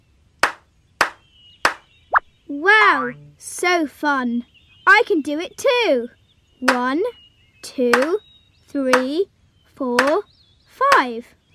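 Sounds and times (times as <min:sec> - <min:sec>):
hands clapping in a children's clapping and counting game: 0:00.4 - 0:01.8
speech: 0:02.5 - 0:11.4.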